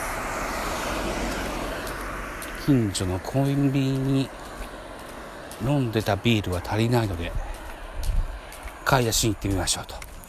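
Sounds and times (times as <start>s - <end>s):
cars passing by: 0.0s - 10.2s
speech: 2.6s - 4.5s, 5.6s - 7.4s, 8.9s - 10.0s.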